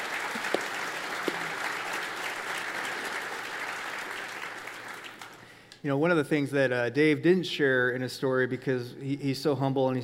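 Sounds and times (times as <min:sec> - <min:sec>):
sizable audience applause: 0:00.0 - 0:05.5
speech: 0:05.8 - 0:10.0.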